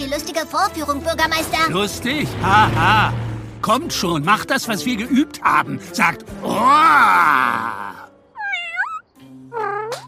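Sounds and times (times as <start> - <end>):
speech: 0.0 - 8.0
kittens meowing, trying to roar: 8.3 - 10.0.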